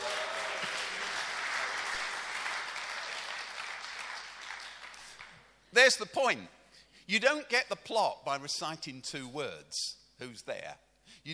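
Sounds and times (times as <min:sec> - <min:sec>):
audience clapping: 0:00.0 - 0:05.5
speech: 0:05.7 - 0:11.3.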